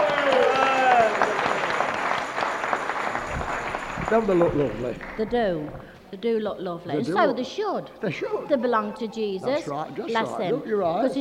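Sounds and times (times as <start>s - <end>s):
crowd clapping in warm applause: 0.0s - 6.0s
speech: 4.1s - 11.1s.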